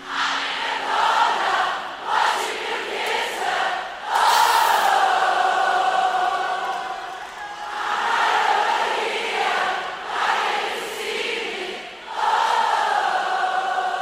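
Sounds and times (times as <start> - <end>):
large crowd singing along at a live concert: 0.0 - 14.0.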